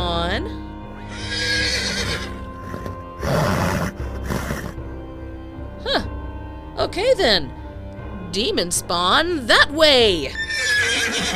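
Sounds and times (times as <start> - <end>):
horse whinnying: 1.1 - 4.8, 10.3 - 11.3
horse snorting: 1.1 - 5.0
speech: 7.0 - 7.6, 8.4 - 10.4.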